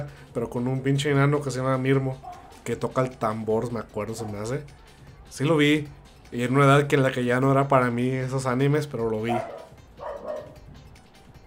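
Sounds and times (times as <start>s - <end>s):
speech: 0.0s - 9.6s
dog barking: 2.2s - 2.6s, 4.2s - 4.4s, 9.2s - 10.7s.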